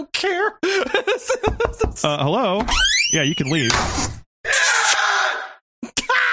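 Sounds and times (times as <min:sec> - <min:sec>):
speech: 0:00.0 - 0:04.7
laughter: 0:00.6 - 0:02.2
muffled scream: 0:04.5 - 0:06.3.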